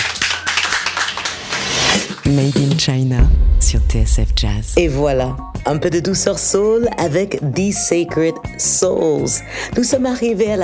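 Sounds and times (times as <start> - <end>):
small studio audience applauding: 0.0 - 2.1
speech: 2.3 - 10.6.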